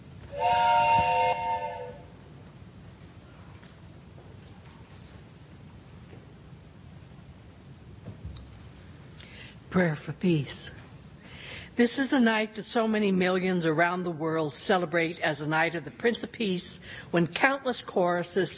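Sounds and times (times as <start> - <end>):
loud steam train whistle blast as train departs: 0.3 - 2.2
speech: 9.7 - 10.8, 11.8 - 18.5.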